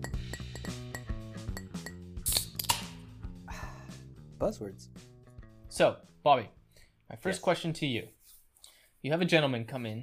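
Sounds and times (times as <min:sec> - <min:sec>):
glasses clinking in a toast: 0:00.0 - 0:02.0
low musical bed: 0:00.0 - 0:08.3
speech: 0:04.4 - 0:04.9, 0:05.8 - 0:08.2, 0:09.0 - 0:10.0.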